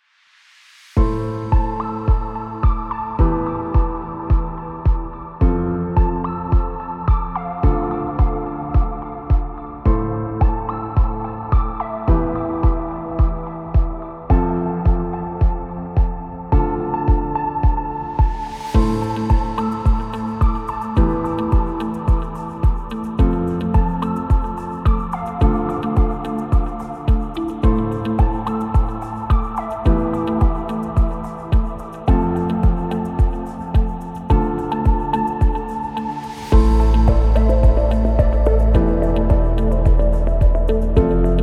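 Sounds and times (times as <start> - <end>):
calm ambient sound: 0.0 - 41.4.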